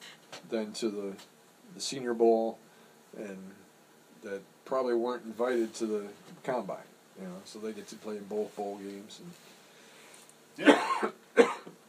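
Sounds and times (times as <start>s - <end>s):
speech: 0.5s - 3.6s, 4.2s - 9.5s, 10.6s - 11.2s
man coughing dry coughs: 10.6s - 11.7s.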